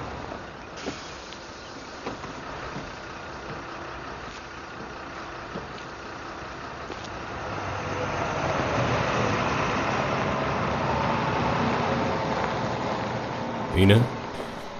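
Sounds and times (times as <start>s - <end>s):
bus engine rumble as it arrives: 0.0s - 14.7s
street noise: 0.0s - 14.7s
speech: 13.8s - 14.2s.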